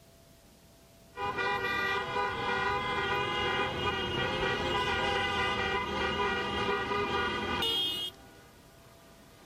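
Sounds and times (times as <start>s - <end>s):
protest car caravan horns honking in a street in Spain: 1.2s - 8.2s.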